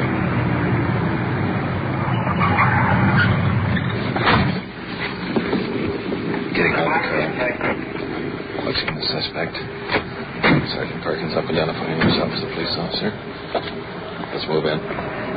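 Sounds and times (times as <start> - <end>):
car rumbling: 0.0 - 15.3
road noise: 0.0 - 15.3
voices: 6.2 - 15.3.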